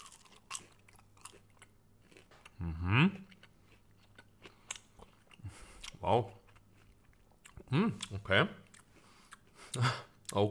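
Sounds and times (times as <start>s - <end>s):
biting into a plain unsauced chicken nugget: 0.0s - 5.1s
speech: 2.6s - 3.2s, 6.1s - 6.4s, 7.7s - 8.6s, 9.8s - 10.5s.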